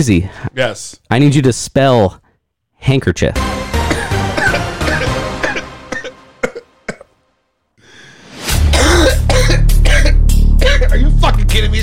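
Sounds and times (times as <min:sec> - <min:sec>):
speech: 0:00.0 - 0:02.2, 0:02.8 - 0:04.6, 0:11.2 - 0:11.8
harsh raspy coughing after smoking weed: 0:03.8 - 0:07.2, 0:08.6 - 0:11.2
loud rough exhale: 0:07.8 - 0:08.8.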